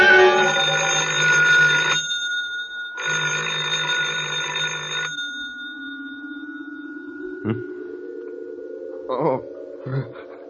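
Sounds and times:
old-fashioned telephone bell ringing loudly: 0.2 - 8.1
faint humming: 5.1 - 10.4.

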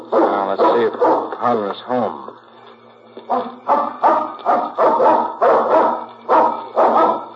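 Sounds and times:
dog barking: 0.0 - 1.6, 3.3 - 7.3
speech: 0.5 - 2.4, 3.2 - 5.9.

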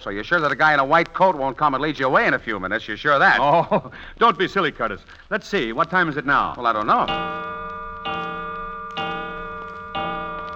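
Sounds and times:
speech: 0.0 - 7.4
clock ticking: 5.8 - 10.5.

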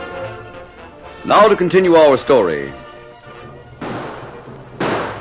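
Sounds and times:
speech: 1.4 - 2.8
loud sharp gunshots: 3.8 - 5.1.

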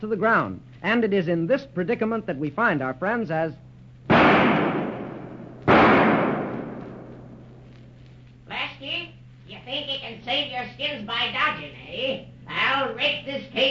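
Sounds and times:
speech: 0.0 - 3.6, 10.6 - 13.6
low steady hum: 0.0 - 13.6
gunshots in a cave: 4.1 - 7.4.

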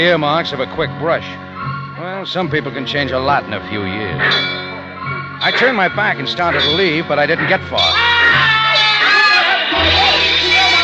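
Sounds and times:
speech: 0.0 - 1.4, 2.0 - 4.6, 5.4 - 8.5
dense crowd shouting and yelling: 4.8 - 10.8.

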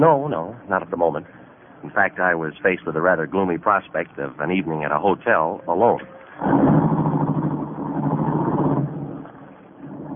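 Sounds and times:
speech: 0.0 - 7.0
car engine humming while driven at night: 6.3 - 10.1.

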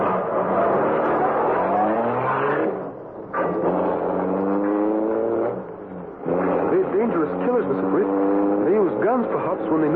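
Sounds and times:
car engine accelerating hard in pursuit of another car: 0.0 - 9.9
speech: 9.1 - 9.9.

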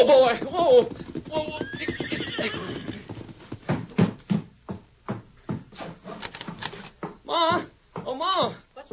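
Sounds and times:
speech: 0.0 - 2.8
horse hooves galloping: 0.0 - 8.9
horse whinnying: 0.9 - 3.3.

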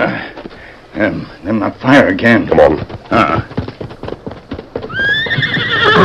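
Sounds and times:
speech: 1.0 - 3.6
horses trotting as riders mount up: 1.5 - 6.0
horse whinnying: 4.8 - 6.0.

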